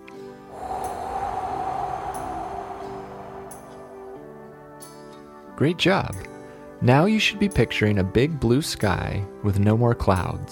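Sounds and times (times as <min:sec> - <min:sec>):
person blowing out deep breath during calming breathing exercise: 0:00.5 - 0:04.5
speech: 0:05.6 - 0:10.5.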